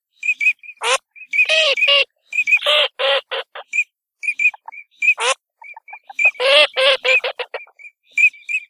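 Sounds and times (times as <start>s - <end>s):
Eurasian teal whistled calls: 0.2s - 2.9s, 3.6s - 8.6s.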